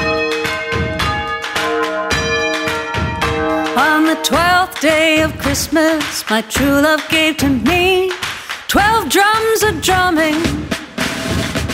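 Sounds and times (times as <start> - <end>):
bells ringing in a rapid overlapping peal: 0.0 - 4.8
speech: 4.3 - 10.8.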